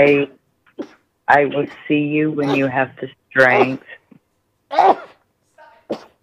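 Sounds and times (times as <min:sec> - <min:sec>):
speech: 0:00.0 - 0:00.4, 0:01.3 - 0:04.0, 0:04.7 - 0:05.1
sneeze: 0:04.7 - 0:05.2, 0:05.9 - 0:06.2.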